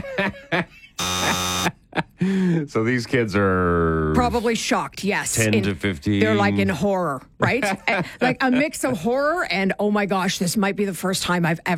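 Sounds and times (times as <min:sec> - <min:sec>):
speech: 0:00.2 - 0:00.8, 0:02.6 - 0:11.7
harsh buzzer sound effect: 0:01.0 - 0:01.9.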